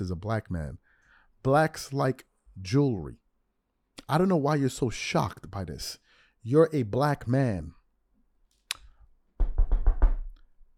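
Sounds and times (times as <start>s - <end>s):
speech: 0.0s - 0.8s, 1.4s - 3.2s, 4.0s - 7.8s
solid knocking on a door: 9.4s - 10.4s.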